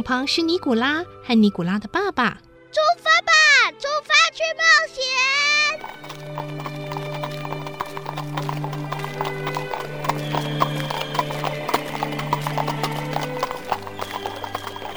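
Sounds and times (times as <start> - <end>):
speech: 0.0 - 7.0
horse hooves clopping on an asphalt road pulling a carriage: 5.7 - 14.9.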